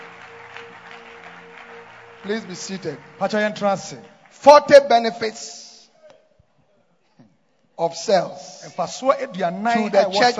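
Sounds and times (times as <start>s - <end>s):
sustained low keyboard or organ tone: 0.0s - 4.2s
audience clapping: 0.0s - 5.4s
speech: 2.2s - 5.6s, 7.8s - 10.3s.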